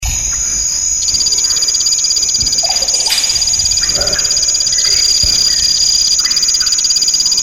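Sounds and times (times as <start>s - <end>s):
Phyllobates lugubris calling: 0.0s - 7.4s.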